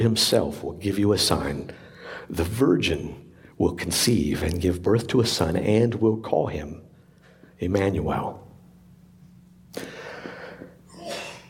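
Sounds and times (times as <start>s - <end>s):
speech: 0.0s - 6.8s, 7.6s - 8.4s, 9.7s - 10.0s
rough breathy exhale: 9.8s - 11.4s
person sneezing: 10.9s - 11.4s.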